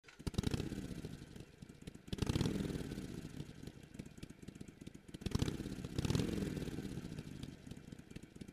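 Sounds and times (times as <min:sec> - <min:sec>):
Sportster 883 motorcycle engine low: 0:00.0 - 0:08.5.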